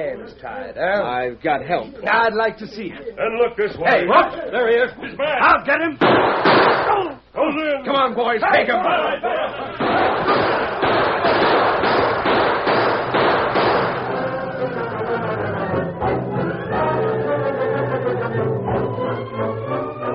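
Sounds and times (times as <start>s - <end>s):
speech: 0.0s - 10.4s
noisy commotion: 0.0s - 20.1s
laughter: 1.6s - 5.6s, 8.5s - 11.4s, 13.8s - 19.7s
gunshots fired in an ambush: 6.0s - 7.0s, 9.8s - 14.4s.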